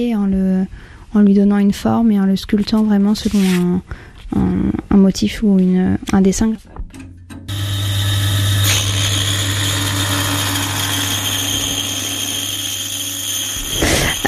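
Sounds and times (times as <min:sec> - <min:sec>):
speech: 0:00.0 - 0:07.0
band saw cutting a paper block: 0:07.3 - 0:14.2.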